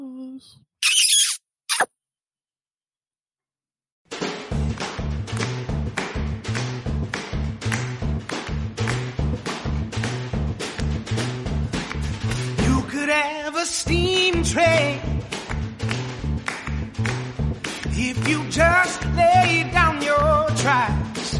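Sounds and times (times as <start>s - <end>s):
speech: 0.4s - 1.0s, 13.2s - 15.2s, 18.1s - 19.8s
short high-pitched squeals: 0.8s - 1.9s
song intro with punchy beat and repeating bassline: 4.5s - 12.8s, 13.9s - 21.3s.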